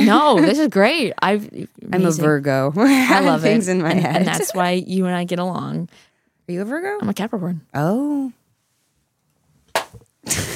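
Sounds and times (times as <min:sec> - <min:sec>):
speech: 0:00.1 - 0:08.4, 0:10.3 - 0:10.5
longer noisy smacking burst: 0:09.7 - 0:10.5
sharp loud slap sound effect: 0:09.7 - 0:10.5.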